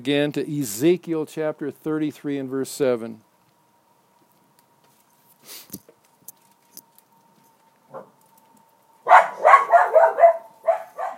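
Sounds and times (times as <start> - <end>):
speech: 0.0 - 3.3, 5.4 - 5.8
dog barking in a church during a sermon: 7.9 - 8.2, 9.1 - 11.1.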